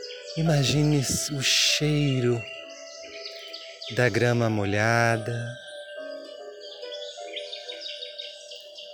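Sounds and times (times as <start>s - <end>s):
birds singing: 0.0s - 8.9s
speech: 0.4s - 2.6s, 3.9s - 5.6s.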